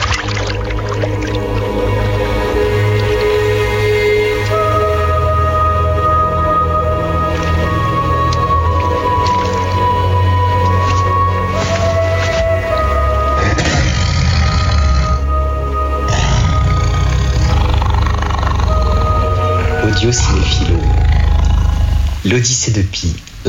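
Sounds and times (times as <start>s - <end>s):
dense noise with sustained tones: 0.0s - 22.4s
tiger roaring and growling: 13.2s - 22.2s
speech: 22.3s - 23.4s.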